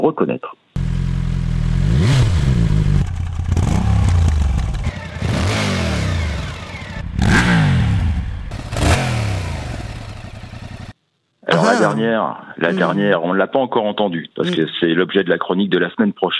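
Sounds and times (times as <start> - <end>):
speech: 0.0 - 0.9, 11.9 - 16.3
motorcycle engines revving: 0.8 - 10.9.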